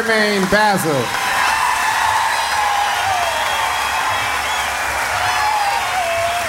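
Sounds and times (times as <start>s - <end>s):
speech: 0.0s - 1.3s
large festival crowd applauding and cheering: 0.0s - 6.4s
shouts: 1.0s - 6.4s
whistles: 2.4s - 4.9s.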